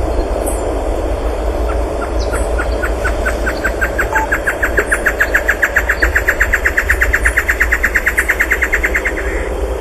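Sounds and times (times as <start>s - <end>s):
Taraba major calling in Calilegua National Park: 0.2s - 9.7s.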